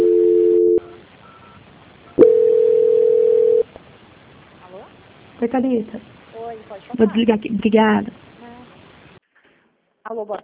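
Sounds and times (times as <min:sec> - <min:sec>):
electronic telephone call-transfer tones on a phone line: 0:00.0 - 0:03.6
speech: 0:05.4 - 0:06.2, 0:06.8 - 0:08.2, 0:10.1 - 0:10.4.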